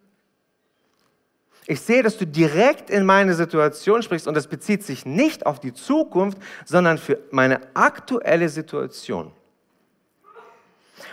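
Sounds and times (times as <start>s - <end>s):
speech: 1.7s - 9.4s
single quick sharp breathy sneeze: 10.2s - 11.1s.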